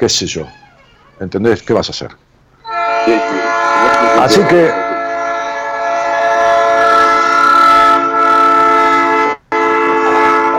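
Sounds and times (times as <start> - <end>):
speech: 0.0 - 0.6, 1.2 - 2.2, 3.1 - 4.8
passing train sounding its horn: 2.6 - 10.5.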